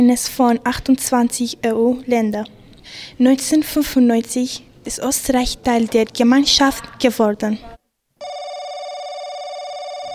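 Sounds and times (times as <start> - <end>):
speech: 0.0 - 7.7
telephone ringing: 8.2 - 10.1.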